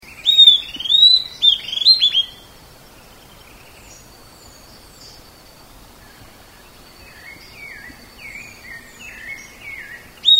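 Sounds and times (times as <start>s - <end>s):
Southern antpipit sharp rising whistles: 0.1s - 2.4s, 9.2s - 10.3s.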